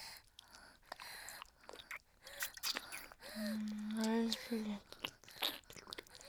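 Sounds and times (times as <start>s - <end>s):
someone biting into and chewing a juicy sour fruit: 0.3s - 6.2s
speech: 4.5s - 4.9s.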